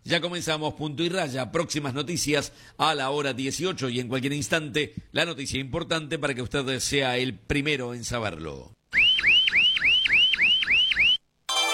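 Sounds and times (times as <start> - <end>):
speech: 0.1 - 9.0
electronic alarm clock warbling: 8.9 - 11.2.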